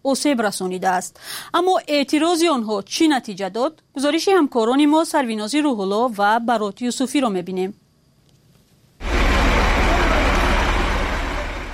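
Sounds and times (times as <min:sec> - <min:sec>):
speech: 0:00.0 - 0:07.8
broadband road noise: 0:09.0 - 0:11.7
heavy freight truck engine roaring through a street: 0:09.0 - 0:11.7.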